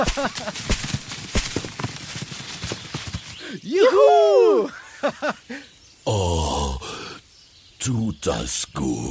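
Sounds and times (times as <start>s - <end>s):
laughter: 0.0s - 0.7s, 3.8s - 5.6s
speech: 0.0s - 0.9s, 3.7s - 6.3s, 7.8s - 9.0s
feet stomping to shake apples off a tree: 0.0s - 2.2s.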